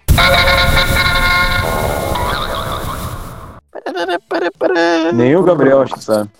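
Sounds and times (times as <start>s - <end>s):
brassy old-fashioned jingle with honking horn-like tones: 0.1s - 3.2s
speech: 5.1s - 6.3s.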